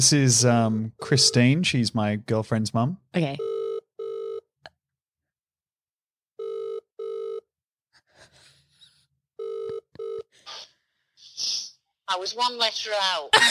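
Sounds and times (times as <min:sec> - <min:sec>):
speech: 0:00.0 - 0:03.5, 0:12.1 - 0:13.4
telephone ringback tone on an outgoing call: 0:03.4 - 0:04.5, 0:06.4 - 0:07.5, 0:09.4 - 0:10.3.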